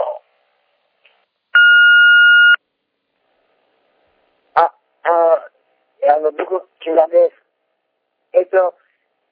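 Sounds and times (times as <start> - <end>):
answering machine beep: 1.6 - 2.6
speech: 6.4 - 7.4, 8.5 - 8.8.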